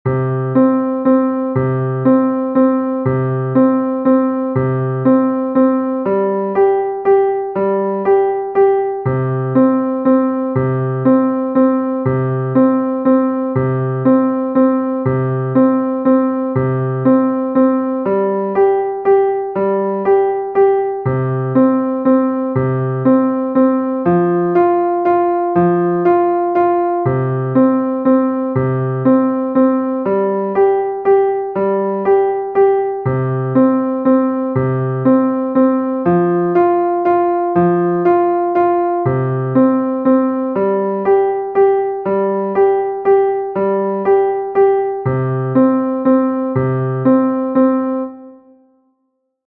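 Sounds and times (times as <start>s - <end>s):
piano waltz: 0.1s - 48.5s.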